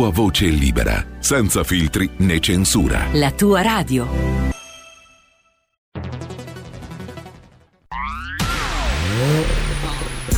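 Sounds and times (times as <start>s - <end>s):
speech: 0.0s - 4.5s
car engine revving: 8.2s - 10.3s.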